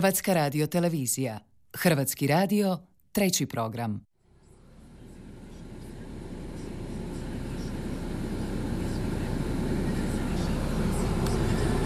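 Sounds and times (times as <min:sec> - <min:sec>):
speech: 0:00.0 - 0:04.1
bus engine drone heard from inside the cabin: 0:04.2 - 0:11.8
bus road noise heard from inside the cabin: 0:04.3 - 0:11.8.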